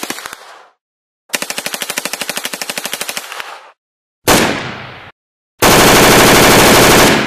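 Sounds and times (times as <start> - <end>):
HK MP5 submachine gun firing: 1.3 - 4.9, 5.6 - 7.2.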